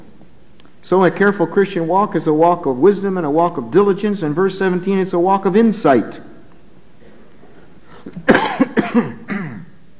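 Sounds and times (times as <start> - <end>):
speech: 0.8 - 6.3
man coughing: 7.9 - 9.8.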